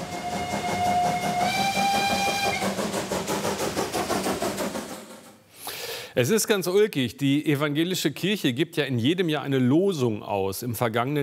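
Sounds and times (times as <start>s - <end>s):
coal-fired steam locomotive whistle: 0.0s - 3.2s
coal-fired steam locomotive hissing and chuffing steam: 0.0s - 6.1s
speech: 6.2s - 11.2s.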